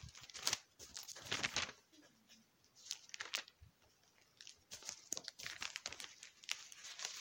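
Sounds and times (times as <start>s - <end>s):
thin Bible pages being turned: 0.0s - 1.8s, 2.8s - 3.6s, 4.2s - 7.2s.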